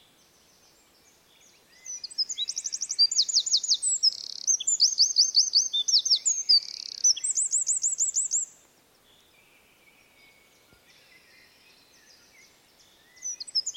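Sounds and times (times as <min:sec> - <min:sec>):
Eurasian wren Troglodytes troglodytes singing: 0:00.0 - 0:08.6, 0:11.9 - 0:13.7.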